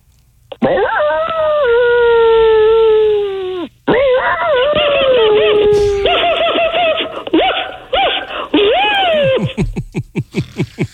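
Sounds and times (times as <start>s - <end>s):
people imitating dogs howling and whimpering: 0.6s - 3.3s, 3.9s - 9.4s
short yelping or giggling bursts: 3.9s - 9.5s.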